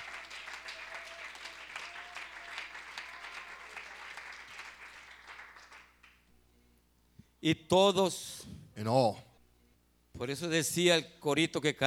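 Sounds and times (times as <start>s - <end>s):
church congregation applause: 0.0s - 6.2s
speech: 7.4s - 9.3s, 10.2s - 11.8s.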